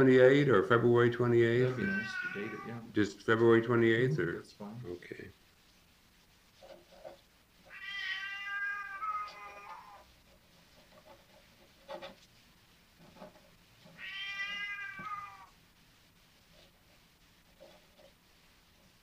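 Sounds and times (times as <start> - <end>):
speech: 0.0 - 5.4
sable Burmese cat meowing: 1.7 - 2.9, 7.6 - 10.1, 14.0 - 15.6.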